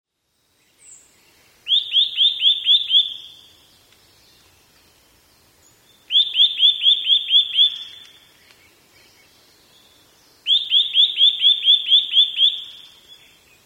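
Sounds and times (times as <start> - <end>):
Eurasian nuthatch rising piping calls: 1.6 - 3.5, 6.1 - 8.2, 10.4 - 13.2.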